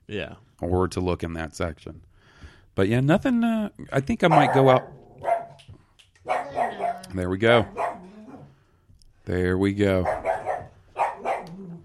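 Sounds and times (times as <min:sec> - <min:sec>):
speech: 0:00.1 - 0:02.1, 0:02.8 - 0:05.3, 0:07.1 - 0:07.8, 0:09.3 - 0:10.2
dog barking: 0:04.2 - 0:05.6, 0:06.2 - 0:08.5, 0:10.0 - 0:11.8.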